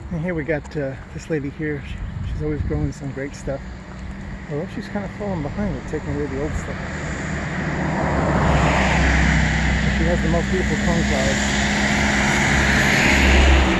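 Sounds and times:
speech: 0.1s - 3.8s, 4.5s - 8.2s, 10.0s - 11.6s
noisy truck rumbling past: 3.4s - 13.7s.

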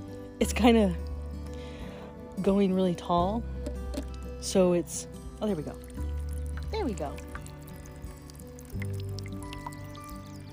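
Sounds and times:
speech: 0.4s - 1.1s, 2.4s - 3.6s, 4.4s - 6.0s, 6.8s - 7.3s
water trickling and splashing over a decorative statue: 3.6s - 10.5s.

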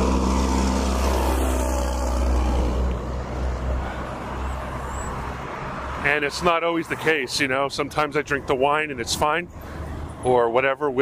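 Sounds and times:
heavy truck engine drone rumbling past: 0.0s - 7.2s
speech: 6.1s - 11.0s.

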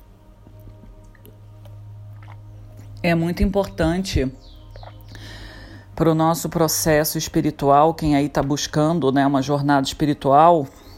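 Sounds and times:
steady low hum: 0.0s - 9.2s
person drinking water with sips and swallows: 0.4s - 3.0s, 4.7s - 5.6s
speech: 3.0s - 4.6s, 6.0s - 10.8s.

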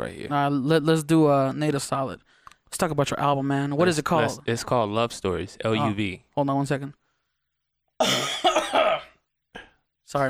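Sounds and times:
speech: 0.0s - 7.0s, 8.0s - 8.5s
man coughing: 8.0s - 9.8s.

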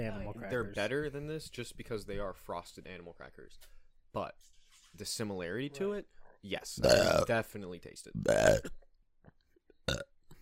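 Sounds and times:
speech: 0.0s - 8.8s
person burping: 6.8s - 7.3s, 8.2s - 8.8s, 9.9s - 10.2s
throaty bursts and mouth sounds: 8.2s - 8.8s.

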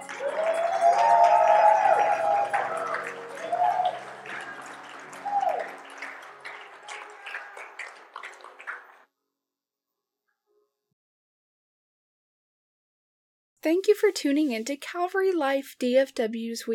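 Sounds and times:
audience shouting and whooping: 0.0s - 7.8s
audience applauding: 0.0s - 9.0s
speech: 13.9s - 16.7s.

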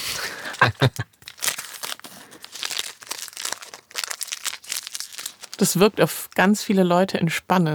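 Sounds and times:
plastic candy bar wrapper crinkling and rustling: 0.0s - 6.7s
laughter: 0.2s - 1.1s
Snickers candy bar wrapper being torn open: 0.5s - 6.4s
speech: 0.7s - 1.1s, 5.6s - 7.7s.

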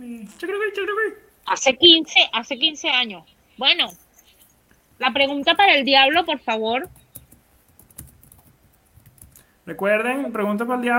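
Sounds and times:
speech: 0.2s - 4.0s, 5.0s - 7.0s, 9.7s - 10.9s
computer keyboard typing: 5.0s - 9.6s.

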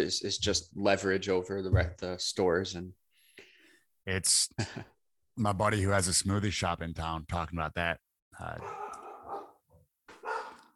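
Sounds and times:
speech: 0.0s - 3.0s, 4.0s - 8.8s
dogs barking: 8.5s - 10.7s.

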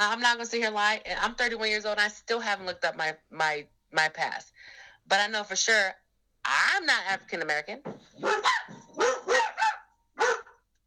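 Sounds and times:
speech: 0.0s - 9.1s
dogs barking: 8.2s - 10.8s.

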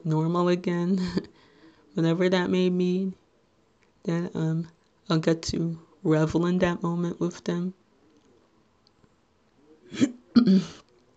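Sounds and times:
speech: 0.0s - 1.4s, 2.0s - 3.2s, 4.0s - 7.8s, 9.9s - 10.8s
person clearing throat: 9.9s - 10.8s.

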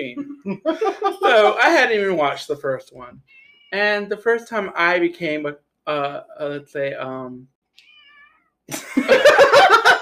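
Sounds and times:
speech: 0.0s - 7.5s, 8.7s - 9.9s
laughter: 0.1s - 1.6s, 8.7s - 9.9s
hungry cat meowing: 3.2s - 3.8s, 7.8s - 8.6s.

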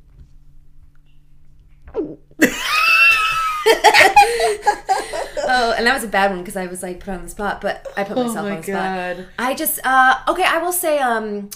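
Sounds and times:
person making an exaggerated cartoonish gulping noise with their voice: 1.8s - 2.4s
more than one person laughing loudly: 2.4s - 6.2s, 7.8s - 9.3s
speech: 5.6s - 11.5s.

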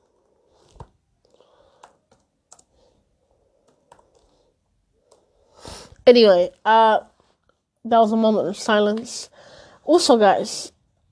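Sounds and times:
typing on a computer keyboard: 1.7s - 2.8s, 3.6s - 4.3s
speech: 6.1s - 7.1s, 7.8s - 10.8s.

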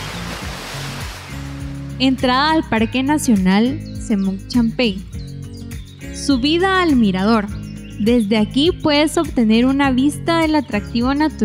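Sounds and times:
steady loud rushing water: 0.0s - 1.9s
speech: 2.0s - 5.1s, 6.2s - 11.4s.

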